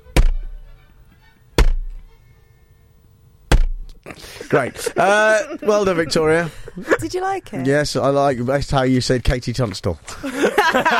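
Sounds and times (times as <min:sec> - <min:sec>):
pak choi banged on a desk: 0:00.2 - 0:00.5, 0:01.6 - 0:02.0, 0:03.5 - 0:03.9
laughter: 0:04.1 - 0:07.1, 0:10.1 - 0:10.9
speech: 0:04.5 - 0:10.9.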